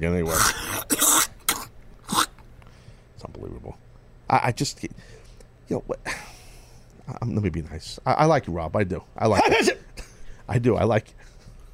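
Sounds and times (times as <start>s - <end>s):
speech: 0.0s - 0.6s, 3.7s - 6.2s, 7.1s - 9.8s, 10.5s - 11.3s
rough raspy throat clearing: 0.3s - 2.4s.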